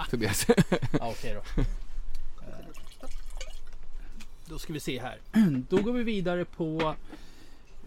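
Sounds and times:
speech: 0.1s - 1.8s, 4.5s - 7.3s
laughter: 0.2s - 1.8s
wine pouring into a glass: 2.4s - 3.8s.

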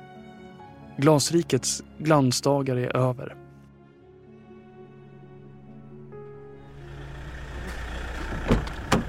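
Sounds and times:
speech: 1.0s - 3.4s
low car engine rumble heard from inside: 5.0s - 9.0s
road noise inside a car: 5.0s - 9.0s.

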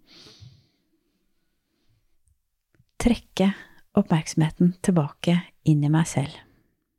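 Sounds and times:
deep breathy inhale taken as a breathing exercise: 0.0s - 1.0s
speech: 3.0s - 6.5s.

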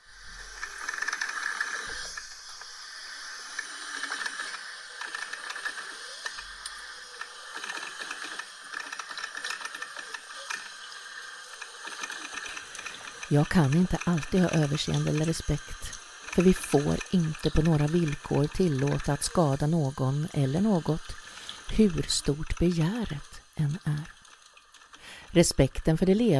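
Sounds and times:
coffee maker brewing: 0.0s - 26.3s
speech: 13.3s - 24.2s, 25.3s - 26.3s.

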